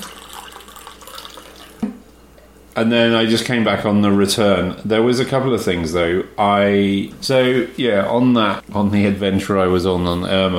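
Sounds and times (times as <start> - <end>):
coffee pouring into a cup: 0.0 - 2.0
speech: 2.8 - 10.5.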